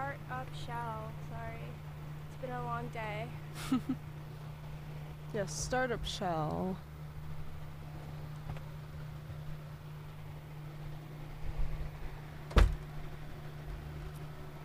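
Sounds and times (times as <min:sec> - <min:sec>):
steady low hum: 0:00.0 - 0:14.6
speech: 0:00.4 - 0:04.1, 0:05.3 - 0:06.9
door closing thud: 0:12.5 - 0:12.9.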